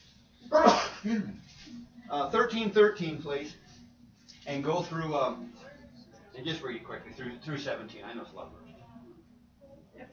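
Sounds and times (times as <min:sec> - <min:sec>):
person sneezing: 0:00.5 - 0:01.3
speech: 0:00.5 - 0:03.6, 0:04.5 - 0:05.7, 0:06.4 - 0:08.6.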